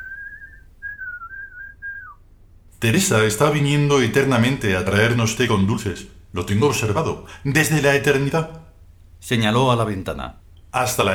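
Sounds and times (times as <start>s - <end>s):
person whistling a bird-like call: 0.0s - 2.2s
speech: 2.8s - 8.6s, 9.2s - 11.1s.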